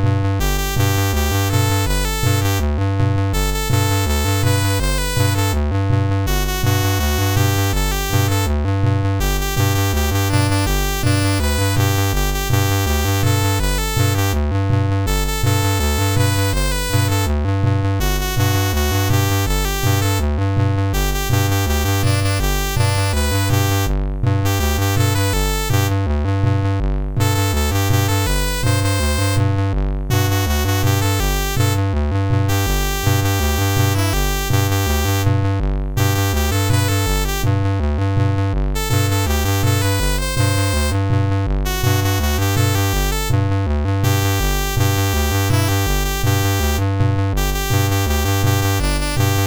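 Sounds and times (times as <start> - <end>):
chiptune music on a MOS6581R3 sound chip: 0.2 - 49.4.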